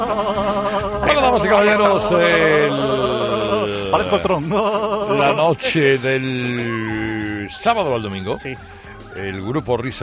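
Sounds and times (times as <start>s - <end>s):
person imitating a bleating goat: 0.0s - 5.8s
laughter: 0.0s - 10.0s
speech: 1.4s - 3.0s, 3.9s - 10.0s.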